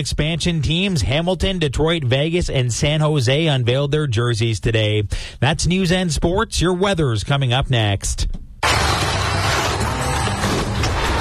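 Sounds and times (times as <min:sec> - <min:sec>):
speech: 0:00.0 - 0:08.4
car collision with crunching metal and clattering debris: 0:08.6 - 0:11.1.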